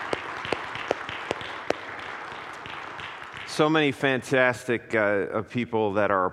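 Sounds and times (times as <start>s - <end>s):
church audience applauding: 0.0s - 4.1s
speech: 3.6s - 6.3s.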